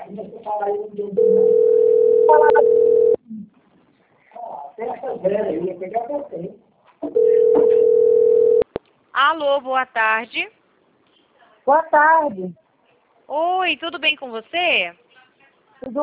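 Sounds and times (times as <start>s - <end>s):
speech: 0.1s - 3.6s, 4.8s - 8.3s, 9.2s - 10.6s, 11.7s - 12.6s, 13.3s - 15.0s, 15.8s - 16.0s
telephone ringing tone during a call: 1.2s - 3.2s, 7.2s - 8.6s.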